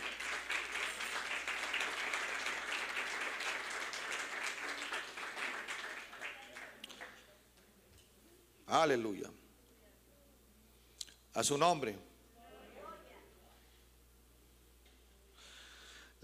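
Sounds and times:
audience applauding loudly: 0.0 - 7.3
speech: 8.7 - 9.4, 11.4 - 12.1.

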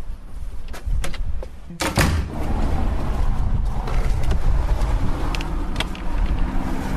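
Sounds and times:
front door swinging shut with a solid thud: 1.8 - 2.6
cars passing by on a nearby road: 2.0 - 6.9.

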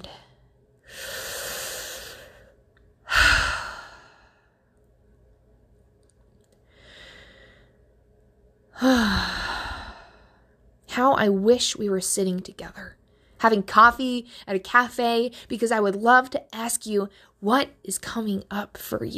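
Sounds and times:
slow deep belly breaths during a guided breathing exercise: 0.1 - 4.7, 6.6 - 8.0, 8.8 - 10.6
speech: 11.2 - 19.1.

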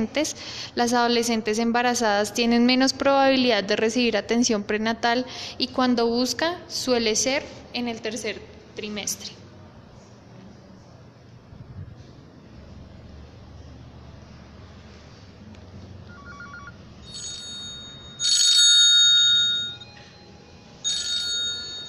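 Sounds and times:
speech: 0.0 - 9.4
telephone ringing for an incoming call: 16.1 - 21.8.

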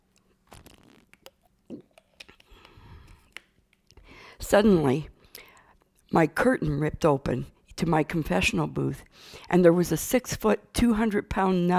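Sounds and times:
person sipping a drink with slurp and swallow: 0.0 - 3.5
light breathing: 2.4 - 3.4, 4.0 - 4.4, 5.2 - 5.9
speech: 4.4 - 5.1, 6.1 - 11.7.

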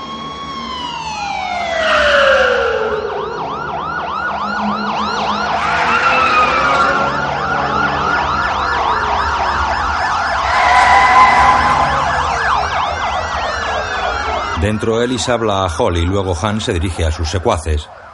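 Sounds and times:
several police car sirens wailing and yelping: 0.0 - 18.1
speech: 14.8 - 18.1.

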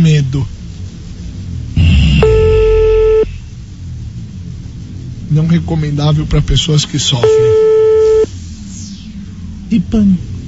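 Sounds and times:
speech: 0.0 - 0.6, 5.3 - 7.6, 9.9 - 10.3
low rumbling noise: 0.0 - 10.4
steady bright electronic telephone line tone while placing a call: 2.2 - 3.3, 7.2 - 8.3.

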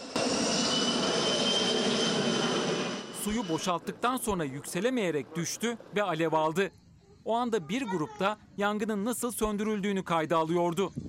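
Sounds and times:
firefighting aircraft engine drone overhead while fighting a fire: 0.0 - 4.3
speech: 3.3 - 11.0.

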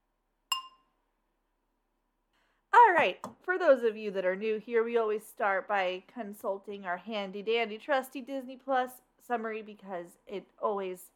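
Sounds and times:
glasses clinking in a toast: 0.5 - 0.8
speech: 3.0 - 11.1.

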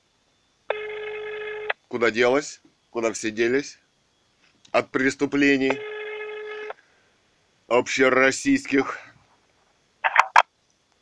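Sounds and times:
speech: 1.9 - 3.8, 4.7 - 5.9, 7.7 - 9.1
phone receiver picked up with a rustling clatter and sharp click: 10.1 - 10.4.

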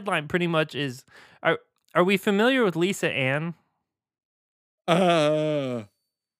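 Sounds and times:
speech: 0.0 - 3.6, 4.9 - 5.9
loud yawn into a microphone with groaning sigh: 4.9 - 5.9.

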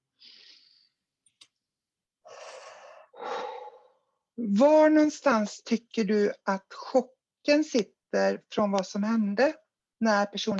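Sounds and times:
slow deep guided breathing: 2.3 - 4.2
speech: 4.4 - 10.5.

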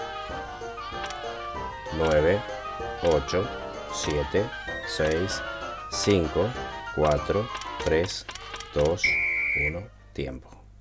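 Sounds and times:
sheep bleating: 0.0 - 3.2, 5.0 - 7.2
speech: 2.0 - 10.6.

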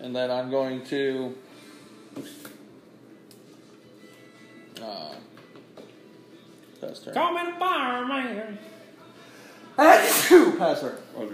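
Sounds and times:
speech: 0.1 - 1.5, 2.1 - 2.4, 4.8 - 5.4, 6.8 - 8.8, 9.8 - 11.3
sneeze: 9.8 - 10.6.

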